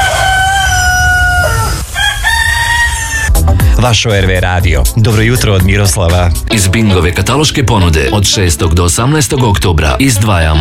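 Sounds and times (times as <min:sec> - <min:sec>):
rooster crowing in the morning: 0:00.0 - 0:03.3
speech: 0:03.8 - 0:10.5.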